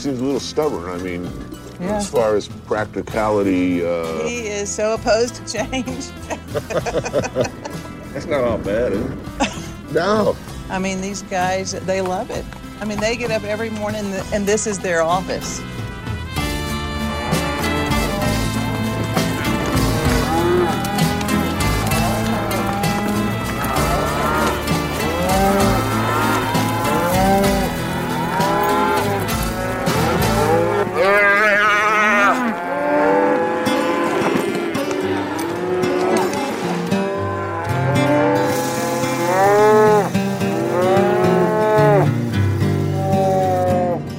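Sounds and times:
speech: 0.0 - 15.8
laughter: 5.7 - 8.2, 9.4 - 9.9
cattle mooing and bellowing in a working pen: 16.2 - 44.1.

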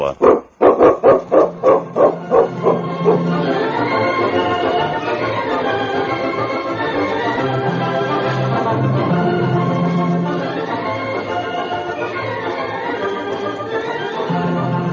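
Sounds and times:
speech: 0.0 - 1.2
steady hum of noise: 0.0 - 14.9
dog barking: 0.1 - 3.6.

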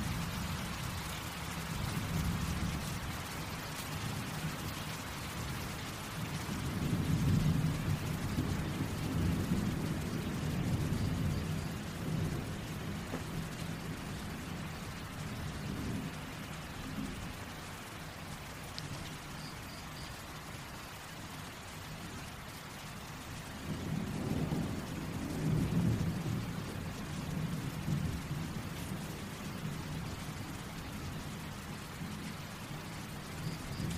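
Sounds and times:
rain pattering on a windowpane and leaves: 0.0 - 33.9
low thunder rumbling: 6.3 - 17.4, 23.6 - 33.9.

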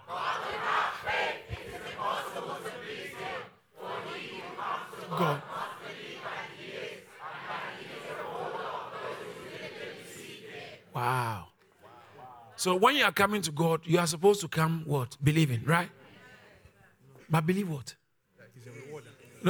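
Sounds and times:
large audience reading a Bible verse aloud in unison: 0.0 - 12.9, 15.9 - 16.8
speech: 12.6 - 16.0, 17.3 - 18.0, 18.6 - 19.4.

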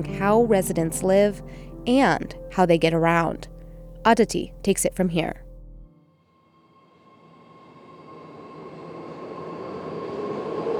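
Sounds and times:
speech: 0.0 - 5.4
faint sustained tonal whine: 3.6 - 10.7
train rumbling into a station: 6.5 - 10.7.

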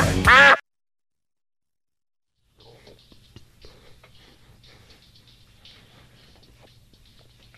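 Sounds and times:
duck quacking: 0.1 - 0.6.

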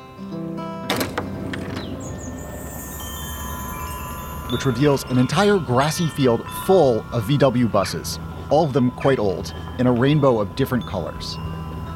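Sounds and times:
outdoor noise: 0.0 - 11.9
door opening to the outside: 0.9 - 2.2
soft wind rumble: 1.2 - 11.9
speech: 4.5 - 11.5.

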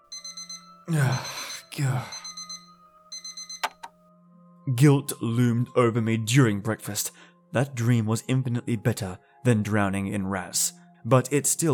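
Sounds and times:
electronic alarm clock beeping in rapid pulses: 0.0 - 4.0
loud drawn-out vocal groans: 0.9 - 2.2
speech: 0.9 - 2.2, 4.7 - 11.7.

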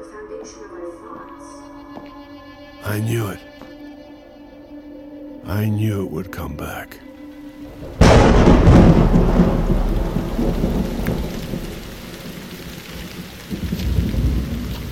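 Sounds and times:
speech: 2.8 - 3.5, 5.5 - 7.1
heavy rain: 7.6 - 14.9
thunder from a powerful storm: 7.7 - 14.9.

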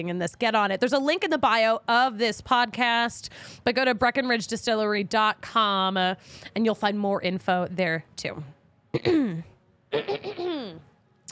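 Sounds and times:
speech: 0.0 - 10.9
person clearing throat: 8.9 - 10.8
person coughing: 8.9 - 10.8.

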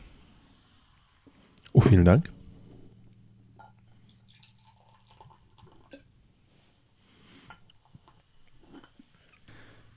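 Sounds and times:
speech: 1.7 - 2.4
low hum: 1.8 - 6.6
fruit wine poured into a glass: 4.1 - 6.1.

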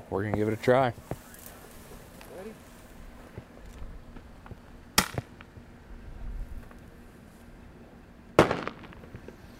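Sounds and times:
low outdoor rumble: 0.0 - 9.5
speech: 0.1 - 1.1
shotgun cracker shell bangs fired from a shotgun: 8.4 - 9.5.

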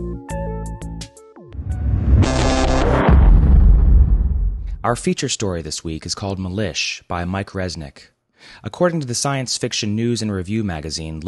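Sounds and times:
falling sweep: 1.6 - 5.0
atomic blast explosion roaring rumble: 1.6 - 5.1
speech: 4.8 - 11.2.

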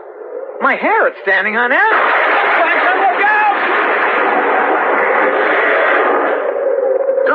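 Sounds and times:
speech: 0.6 - 2.8
tree crashing down: 1.7 - 6.5.

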